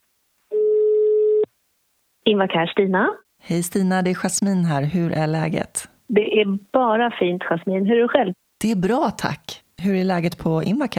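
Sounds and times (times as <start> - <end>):
telephone ringing tone while calling: 0.5 - 1.5
speech: 2.3 - 10.9.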